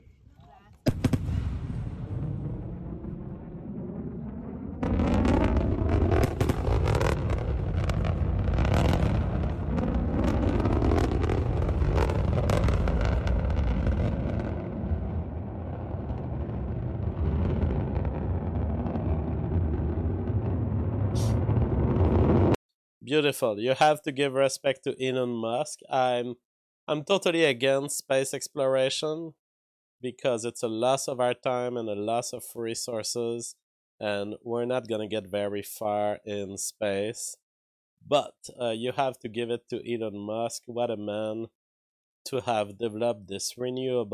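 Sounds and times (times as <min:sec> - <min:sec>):
rocket engine roaring at launch: 0:00.9 - 0:22.6
speech: 0:23.1 - 0:29.4, 0:30.0 - 0:37.4, 0:38.0 - 0:41.6, 0:42.2 - 0:44.1.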